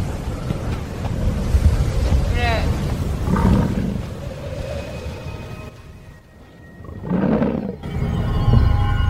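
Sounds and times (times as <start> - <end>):
howling wind of a sudden spring blizzard: 0.0 - 9.0.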